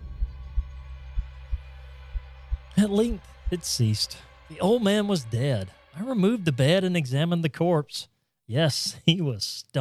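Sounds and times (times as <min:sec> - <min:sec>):
muffled low heartbeat: 0:00.0 - 0:03.6
speech: 0:02.8 - 0:09.8.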